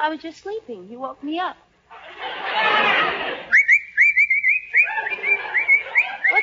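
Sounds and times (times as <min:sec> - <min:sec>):
speech: 0:00.0 - 0:03.2
laughter: 0:01.9 - 0:03.6, 0:04.7 - 0:06.4
person whistling a tune: 0:03.5 - 0:06.4.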